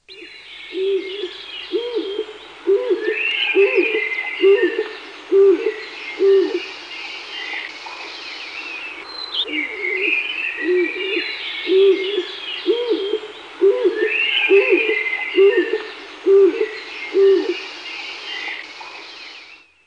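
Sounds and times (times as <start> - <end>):
blue pigeon cooing: 0.8 - 6.7, 9.4 - 17.7.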